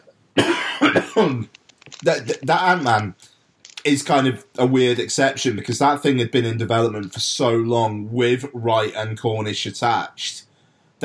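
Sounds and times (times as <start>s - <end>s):
person coughing harshly and raspily: 0.4s - 1.5s
speech: 1.0s - 11.0s.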